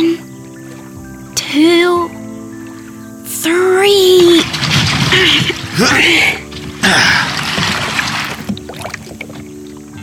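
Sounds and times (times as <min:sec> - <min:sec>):
lake water sloshing and gurgling: 0:00.0 - 0:10.0
boat pushed into lake water with a rushing splash: 0:03.3 - 0:10.0.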